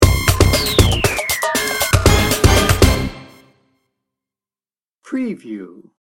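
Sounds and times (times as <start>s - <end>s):
industrial music sting bumper: 0.0s - 3.5s.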